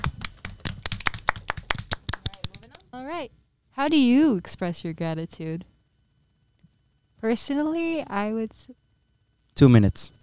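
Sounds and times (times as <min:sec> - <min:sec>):
small group clapping hands: 0:00.0 - 0:02.9
speech: 0:03.0 - 0:05.7, 0:07.2 - 0:08.8, 0:09.6 - 0:10.2.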